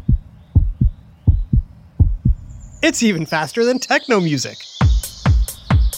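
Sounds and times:
heartbeat thumping in lub-dub pairs: 0.0 - 2.8, 4.8 - 5.9
speech: 2.8 - 4.7.

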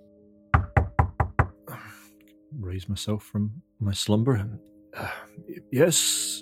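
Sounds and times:
firm knocking on a door: 0.5 - 1.6
speech: 2.6 - 6.4.

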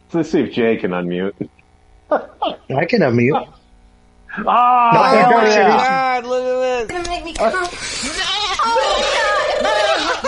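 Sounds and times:
speech: 0.1 - 3.6, 4.3 - 8.2
laughter: 4.3 - 6.3, 7.5 - 10.2
goat bleating: 8.0 - 10.2.

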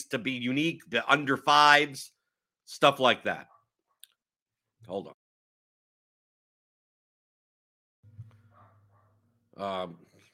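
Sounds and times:
speech: 0.0 - 3.5, 4.8 - 5.2, 9.6 - 10.1
dog barking: 3.4 - 3.8, 8.4 - 9.2.

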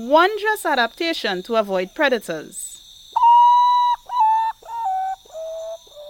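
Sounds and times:
speech: 0.0 - 2.7
faint high insect drone: 0.0 - 6.0
Common Potoo mournful whistled song: 3.2 - 6.0.

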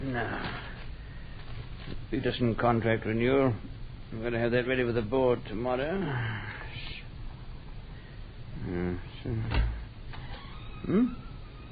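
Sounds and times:
speech: 0.2 - 0.7, 2.1 - 6.9, 8.6 - 9.7, 10.8 - 11.2
door hinges creaking and squealing: 9.4 - 11.6.

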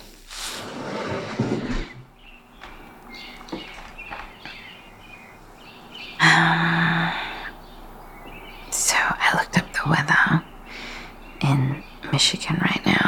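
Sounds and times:
rough sliding rustling noise: 0.0 - 2.1
faint bird chirps outside an open window: 1.6 - 13.0
speech: 12.2 - 12.8.

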